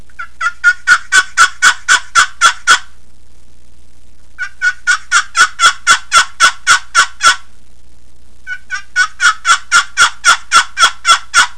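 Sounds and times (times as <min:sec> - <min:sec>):
turkey yelps: 0:00.2 - 0:02.9, 0:04.4 - 0:07.5, 0:08.5 - 0:11.5.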